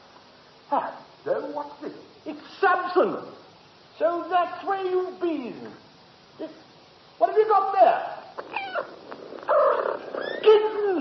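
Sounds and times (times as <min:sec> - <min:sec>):
speech: 0:00.7 - 0:03.4, 0:04.0 - 0:05.8, 0:06.4 - 0:06.6, 0:07.2 - 0:08.5
tiny newborn kittens mewing: 0:08.3 - 0:10.9
cat purring: 0:08.4 - 0:10.9.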